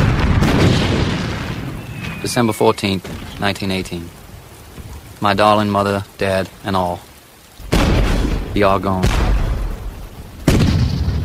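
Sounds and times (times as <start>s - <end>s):
loud explosion like artillery or a bomb: 0.0s - 2.3s, 7.7s - 11.2s
speech: 2.2s - 4.2s, 5.2s - 7.1s, 8.5s - 9.2s.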